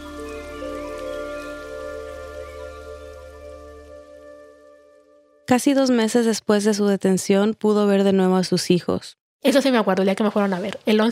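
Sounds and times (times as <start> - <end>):
steady rain pattering on a surface: 0.0 - 4.6
speech: 5.5 - 11.1.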